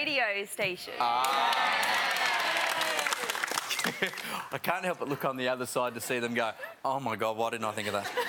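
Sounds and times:
speech: 0:00.0 - 0:02.4, 0:03.2 - 0:08.2
faint murmurs of cheering: 0:01.0 - 0:03.4
crowd clapping: 0:01.0 - 0:04.6.

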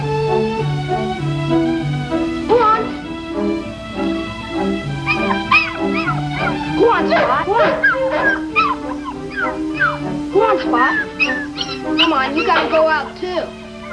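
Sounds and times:
steady humming tonal background: 0:00.0 - 0:13.9
dog whimpering: 0:04.3 - 0:13.9
dog yipping and barking: 0:05.0 - 0:13.2.

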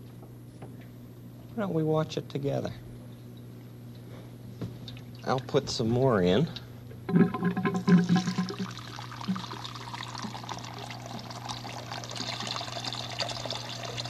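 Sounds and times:
speech: 0:01.6 - 0:02.9, 0:05.3 - 0:08.6
water pouring with a gurgling bubbly rush: 0:07.1 - 0:14.0.

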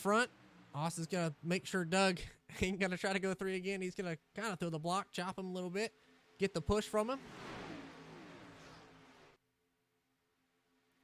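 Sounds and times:
race car engine roaring past at speed: 0:00.0 - 0:02.0, 0:05.9 - 0:09.4
speech: 0:00.0 - 0:07.5
quieter engine hum: 0:00.0 - 0:09.4.

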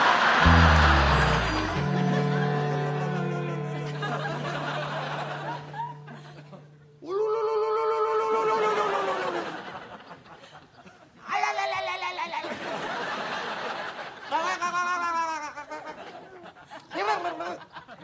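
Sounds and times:
laughter: 0:00.0 - 0:06.9, 0:08.1 - 0:18.0
low droning tone: 0:00.4 - 0:07.1
man ululating: 0:07.0 - 0:09.3.

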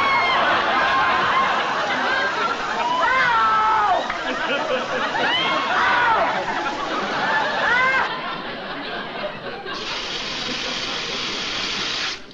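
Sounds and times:
voices exclaiming: 0:00.0 - 0:08.2
laughter: 0:00.0 - 0:12.1
water gushing from a tap: 0:09.8 - 0:12.3.

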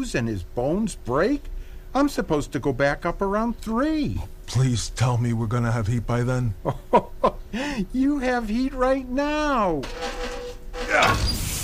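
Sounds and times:
speech: 0:00.0 - 0:11.4
sneeze: 0:10.8 - 0:11.6.

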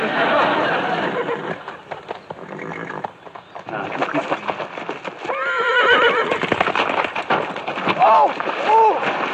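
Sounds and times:
laughter: 0:00.0 - 0:02.0
horse hooves clip-clopping: 0:01.2 - 0:09.3
horse whinnying loudly: 0:02.4 - 0:03.1, 0:05.3 - 0:06.6.

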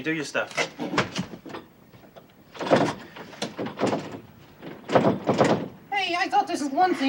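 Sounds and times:
speech: 0:00.0 - 0:01.1, 0:06.5 - 0:07.0
door rattling and clunking: 0:00.6 - 0:05.9
heavy knocks on a door: 0:00.9 - 0:05.9.

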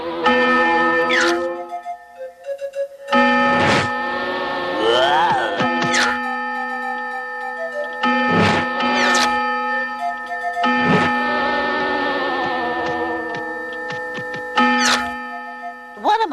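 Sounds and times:
barnyard clock chiming: 0:00.0 - 0:16.3.

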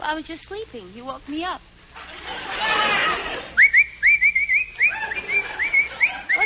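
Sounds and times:
speech: 0:00.0 - 0:03.6
laughter: 0:02.0 - 0:03.7, 0:04.8 - 0:06.4
person whistling: 0:03.6 - 0:06.4.

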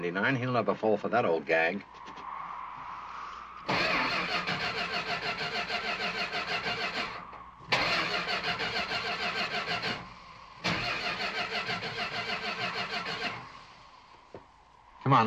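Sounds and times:
speech: 0:00.0 - 0:02.2, 0:15.1 - 0:15.2
car engine starter cranking: 0:03.6 - 0:14.3.

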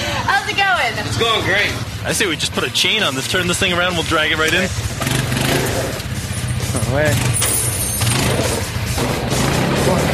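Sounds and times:
old vehicle engine cranking and rumbling: 0:00.0 - 0:10.1
speech: 0:00.9 - 0:05.9, 0:06.9 - 0:07.5.

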